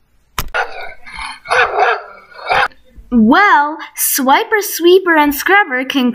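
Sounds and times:
dog barking: 0:00.6 - 0:02.8
speech: 0:03.1 - 0:06.1.

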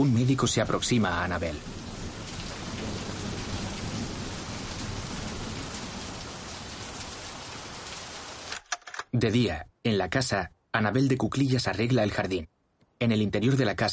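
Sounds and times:
speech: 0:00.0 - 0:01.8, 0:09.2 - 0:13.9
steady rain falling outside: 0:00.0 - 0:08.7.

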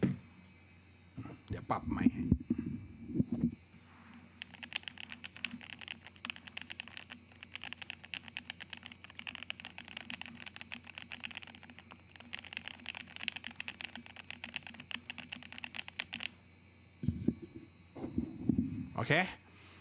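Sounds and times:
low constant hum: 0:00.0 - 0:19.7
speech: 0:01.5 - 0:03.5, 0:19.0 - 0:19.4
rapid typing on a mechanical computer keyboard: 0:04.4 - 0:16.3.

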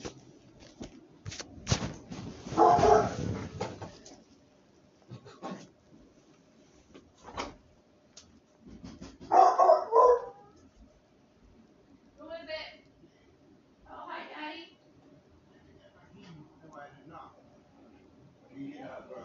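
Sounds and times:
quiet rustling: 0:00.0 - 0:04.4
pet dog barking muted: 0:02.5 - 0:03.4, 0:09.3 - 0:10.5.

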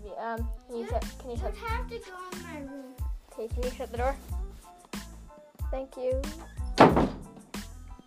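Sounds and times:
speech: 0:00.2 - 0:04.4, 0:05.7 - 0:06.6
door swinging shut with a solid thunk: 0:06.6 - 0:07.5
door knocking softly against the frame: 0:06.7 - 0:07.5.

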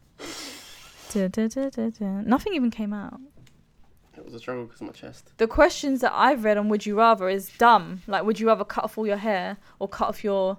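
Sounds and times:
person blowing nose: 0:00.0 - 0:01.2
speech: 0:01.1 - 0:03.4, 0:04.2 - 0:10.5.

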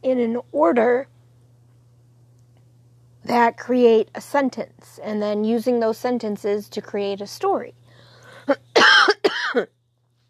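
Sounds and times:
speech: 0:00.0 - 0:01.1, 0:03.2 - 0:07.8, 0:08.5 - 0:08.7, 0:09.5 - 0:09.8
harsh raspy coughing: 0:08.7 - 0:09.7.

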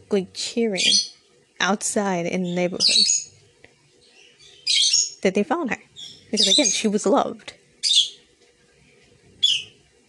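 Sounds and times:
speech: 0:00.1 - 0:03.3, 0:04.7 - 0:07.6
pet bird chirping: 0:00.8 - 0:01.2, 0:02.4 - 0:03.4, 0:04.0 - 0:05.2, 0:05.9 - 0:06.8, 0:07.8 - 0:08.2, 0:09.4 - 0:09.8.

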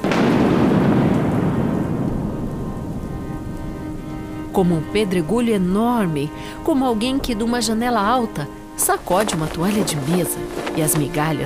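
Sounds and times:
deep loud roll of thunder: 0:00.0 - 0:04.4
heavy rain downpour: 0:00.0 - 0:07.2, 0:08.5 - 0:11.4
speech: 0:04.6 - 0:11.4.

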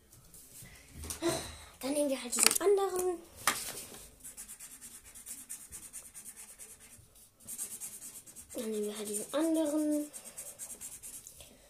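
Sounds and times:
speech: 0:02.0 - 0:03.5, 0:08.6 - 0:10.2
pen running dry scratching across paper while drawing: 0:04.3 - 0:11.3.

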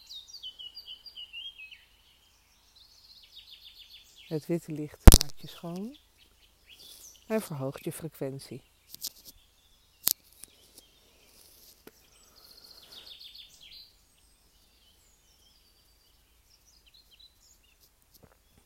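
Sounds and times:
faint birdsong in a quiet outdoor space: 0:00.0 - 0:18.6
speech: 0:04.3 - 0:06.1, 0:07.3 - 0:08.7.

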